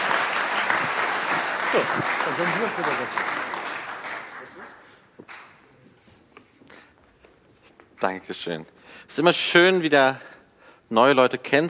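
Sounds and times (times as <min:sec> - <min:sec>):
crowd applauding: 0:00.0 - 0:05.6
speech: 0:01.7 - 0:03.6, 0:08.0 - 0:10.3, 0:10.9 - 0:11.6.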